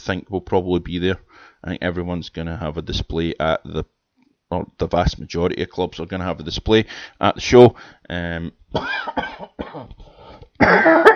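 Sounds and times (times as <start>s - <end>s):
speech: 0.0s - 11.1s
person with a recurring cough coughing: 8.8s - 10.0s, 10.6s - 11.1s.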